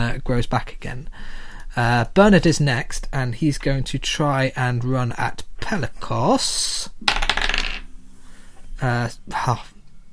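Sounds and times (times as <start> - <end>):
speech: 0.1 - 7.3, 8.8 - 9.7
dice rolling on a hard tabletop for an attack roll: 7.0 - 7.9.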